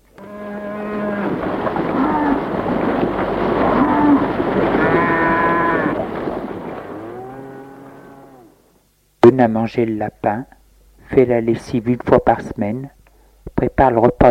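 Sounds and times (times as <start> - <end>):
cows mooing while being milked: 0.2 - 2.6, 3.5 - 8.7
speech: 9.4 - 13.0, 13.6 - 14.2.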